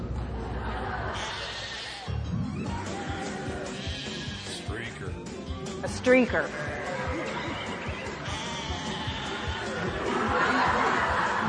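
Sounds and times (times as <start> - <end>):
laughter: 0.2 - 2.2, 6.5 - 11.4
sheep bleating: 2.9 - 4.7, 6.5 - 10.0
speech: 6.0 - 6.6.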